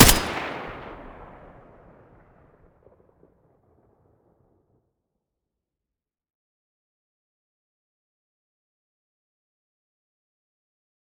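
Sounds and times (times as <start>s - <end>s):
M4A1 rifle muzzle gunshot: 0.0s - 1.0s.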